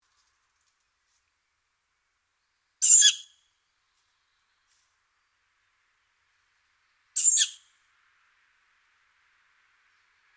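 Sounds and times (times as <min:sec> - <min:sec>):
tawny owl making rasping hissed calls: 0:07.2 - 0:07.6.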